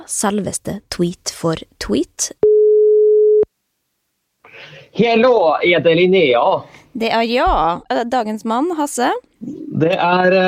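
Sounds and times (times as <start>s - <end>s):
speech: 0.0s - 2.4s, 5.0s - 10.4s
telephone ringback tone while placing a call: 2.4s - 3.5s.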